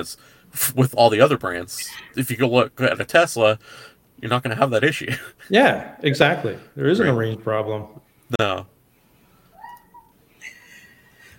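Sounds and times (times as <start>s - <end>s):
speech: 0.0s - 8.7s
quiet hiss: 0.0s - 11.3s
cat chirping: 9.6s - 10.2s.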